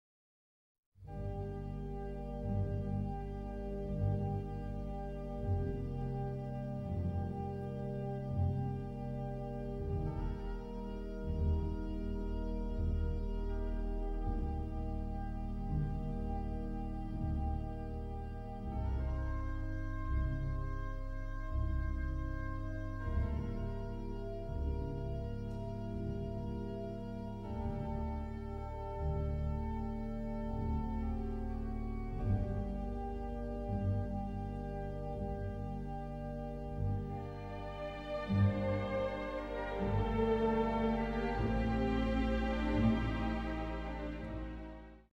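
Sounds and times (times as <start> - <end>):
strings and organ playing a slow piece: 1.1 - 45.1.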